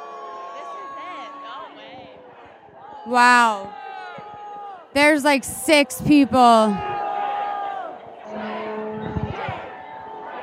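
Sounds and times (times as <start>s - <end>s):
speech: 3.0s - 3.8s, 5.0s - 6.9s
protest crowd chanting and shouting in unison: 3.1s - 3.7s, 5.0s - 7.2s, 8.0s - 10.4s.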